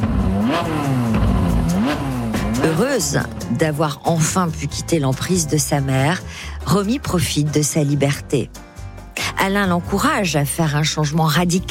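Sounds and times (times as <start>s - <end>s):
silver-grey Ferrari sports car engine revving at around 200 km/h: 0.0s - 3.9s
speech: 0.6s - 0.9s, 2.7s - 8.6s, 9.4s - 11.6s.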